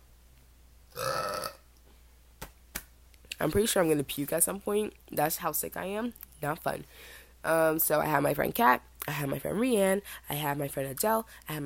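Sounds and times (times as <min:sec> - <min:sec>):
person burping: 0:00.9 - 0:01.6
speech: 0:03.4 - 0:11.6.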